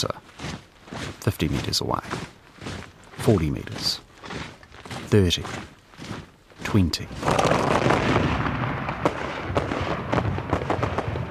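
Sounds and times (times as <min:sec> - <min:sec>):
speech: 0:00.0 - 0:00.6, 0:01.2 - 0:04.4, 0:05.1 - 0:05.7, 0:06.6 - 0:07.5
volley of musket fire from defenders on a wall: 0:07.2 - 0:11.2.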